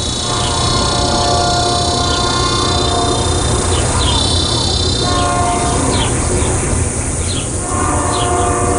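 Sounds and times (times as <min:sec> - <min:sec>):
passing train rumbling heard from a house near the tracks: 0:00.0 - 0:08.7.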